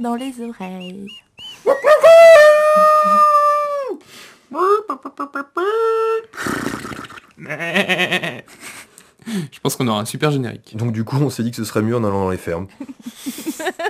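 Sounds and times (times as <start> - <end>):
speech: 0.0 - 3.4, 4.0 - 6.6, 7.4 - 13.8
rough wavering animal-like cries from a person: 1.2 - 4.0
person imitating a dog howling: 1.6 - 6.3.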